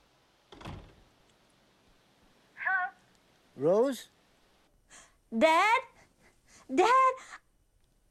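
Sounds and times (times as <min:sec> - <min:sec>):
door thudding shut: 0:00.5 - 0:01.1
speech: 0:03.6 - 0:04.2, 0:04.9 - 0:05.9, 0:06.7 - 0:07.4.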